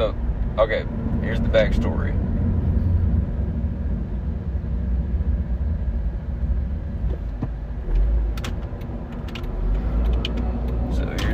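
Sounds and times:
speech: 0:00.0 - 0:02.2
car interior road and engine rumble while driving: 0:00.0 - 0:11.3
faint clicks and rattles: 0:08.3 - 0:11.3.

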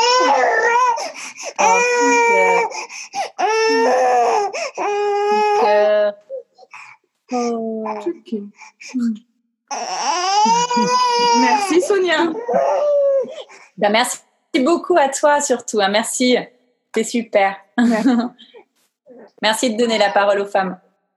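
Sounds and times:
baby crying and wailing: 0:00.0 - 0:08.2, 0:09.7 - 0:13.6, 0:19.1 - 0:20.3
speech: 0:08.1 - 0:13.0, 0:13.8 - 0:20.8
laughter: 0:17.8 - 0:18.3.

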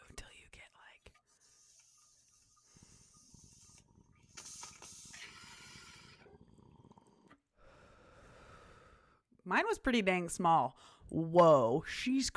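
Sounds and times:
hissing inhale through a dab rig: 0:01.3 - 0:09.2
speech: 0:09.5 - 0:12.3.

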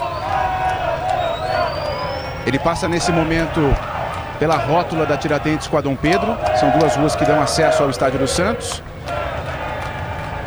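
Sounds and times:
large crowd chanting a name in unison: 0:00.0 - 0:10.4
speech: 0:02.4 - 0:09.2.

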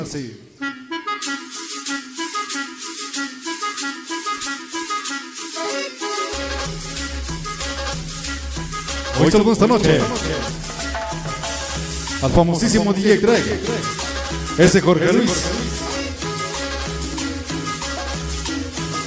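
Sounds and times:
speech: 0:00.0 - 0:01.4, 0:09.2 - 0:10.6, 0:12.2 - 0:14.0, 0:14.6 - 0:15.7
lively cumbia track with percussion and melodic lines: 0:00.4 - 0:19.0
deep bass line: 0:06.5 - 0:19.0.

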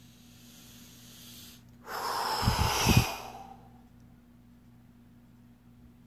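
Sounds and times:
slow deep meditative exhalation: 0:01.5 - 0:03.8.

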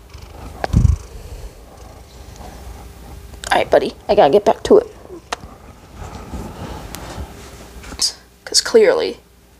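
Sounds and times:
cat purring: 0:00.0 - 0:07.6
speech: 0:03.6 - 0:05.0, 0:08.7 - 0:09.2.

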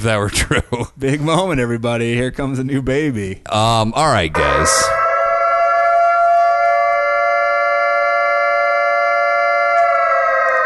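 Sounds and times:
speech: 0:00.0 - 0:05.0
air raid siren holding a steady wail: 0:04.3 - 0:10.6.

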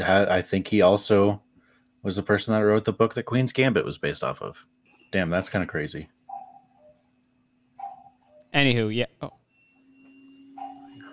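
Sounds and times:
speech: 0:00.0 - 0:01.4, 0:02.0 - 0:06.2, 0:08.5 - 0:09.4
cuckoo clock calling in two-note hoots: 0:06.3 - 0:07.0, 0:07.8 - 0:08.6, 0:09.8 - 0:11.1.

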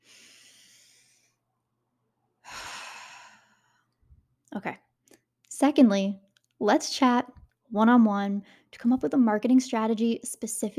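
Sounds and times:
slow deep breath taken to calm down: 0:00.0 - 0:01.4, 0:02.4 - 0:04.1
speech: 0:04.6 - 0:04.8, 0:05.6 - 0:10.7.

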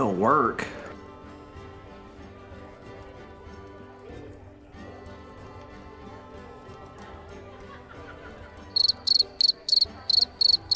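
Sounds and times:
speech: 0:00.0 - 0:00.8
laughter: 0:07.3 - 0:10.4
crickets chirping: 0:08.8 - 0:10.7.

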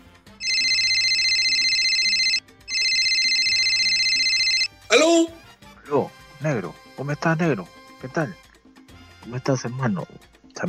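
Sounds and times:
telephone ringing with electronic trill: 0:00.4 - 0:04.7
speech: 0:04.9 - 0:08.4, 0:09.2 - 0:10.3.

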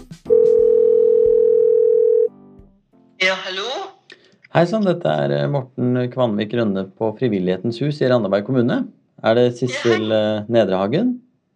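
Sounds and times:
telephone ringing tone on an outgoing call: 0:00.3 - 0:02.4
speech: 0:04.5 - 0:11.2.

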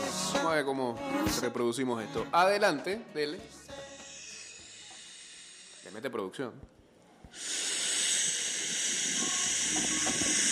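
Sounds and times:
speech: 0:00.4 - 0:03.7, 0:05.9 - 0:07.6
breathy hissing exhale imitating letter H: 0:03.8 - 0:06.1, 0:07.2 - 0:10.4.

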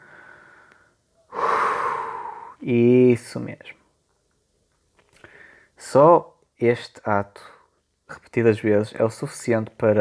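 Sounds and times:
slow breathing during a relaxation exercise: 0:00.0 - 0:02.6, 0:05.1 - 0:05.8
speech: 0:02.6 - 0:03.8, 0:05.8 - 0:09.9.

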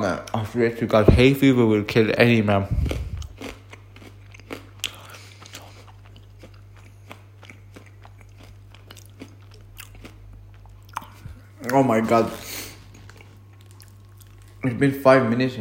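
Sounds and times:
speech: 0:00.0 - 0:03.5, 0:11.8 - 0:12.5, 0:14.6 - 0:15.5
person chewing a crunchy chocolate bar: 0:02.7 - 0:14.7.

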